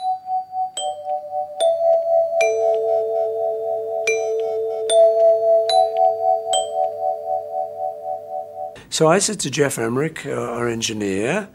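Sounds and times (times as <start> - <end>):
doorbell chime ringing: 0.0 - 8.8
speech: 9.0 - 11.5.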